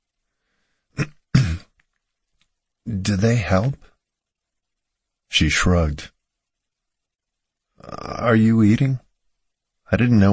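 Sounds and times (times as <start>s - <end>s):
person nervously clearing throat: 1.0s - 1.8s
speech: 3.1s - 3.9s, 5.3s - 6.2s, 7.8s - 9.0s, 9.9s - 10.3s.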